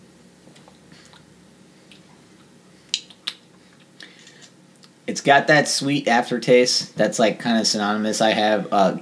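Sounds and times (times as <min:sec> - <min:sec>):
sharp wet mouth clicks from sipping a bubbly lime drink: 0:01.9 - 0:05.0
speech: 0:05.1 - 0:09.0.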